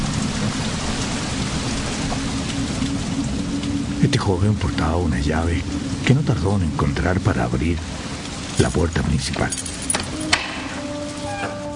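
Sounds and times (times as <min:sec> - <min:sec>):
heavy rain pouring down in a sudden downpour: 0:00.0 - 0:11.7
speech: 0:04.0 - 0:08.0, 0:08.6 - 0:09.7.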